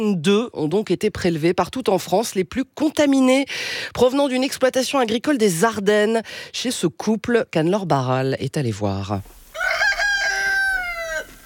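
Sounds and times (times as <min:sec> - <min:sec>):
speech: 0:00.0 - 0:09.4
rooster crowing on a farm in the Ardennes: 0:09.5 - 0:11.4.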